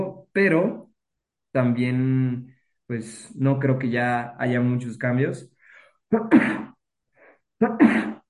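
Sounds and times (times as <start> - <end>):
speech: 0.4 - 0.8, 1.5 - 5.5, 6.1 - 6.7, 7.6 - 8.2
person sneezing: 6.1 - 6.8, 7.6 - 8.2.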